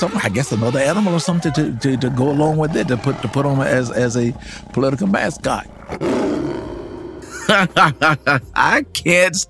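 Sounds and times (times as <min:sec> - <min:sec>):
speech: 0:00.0 - 0:06.4, 0:07.5 - 0:09.4
panther deep rumbling roar: 0:00.7 - 0:08.3
laughter: 0:07.2 - 0:08.7.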